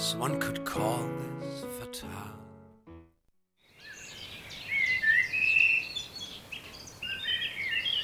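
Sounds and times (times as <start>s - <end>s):
speech: 0.1s - 1.4s
birds singing: 3.6s - 8.0s.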